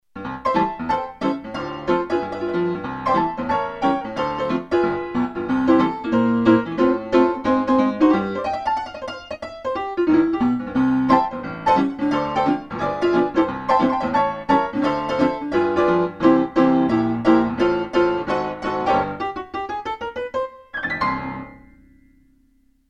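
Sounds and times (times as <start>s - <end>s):
honky-tonk piano: 0.0s - 22.5s.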